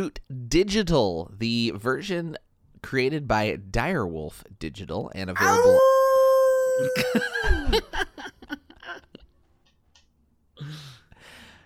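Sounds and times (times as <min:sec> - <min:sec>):
speech: 0:00.0 - 0:06.0, 0:06.8 - 0:08.3
person imitating a wolf howl: 0:05.4 - 0:07.6
breathy exhale: 0:10.6 - 0:11.6.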